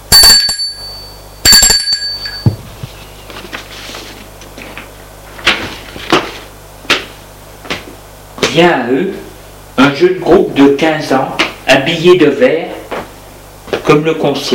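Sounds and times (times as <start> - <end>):
bell on a hotel reception desk dinging: 0.1 - 2.8
speech: 8.6 - 9.2, 9.8 - 12.7, 13.9 - 14.5.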